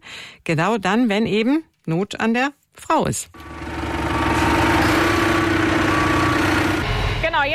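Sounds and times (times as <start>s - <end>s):
speech: 0.5s - 3.5s
tractor engine idling at low revs: 3.4s - 6.9s.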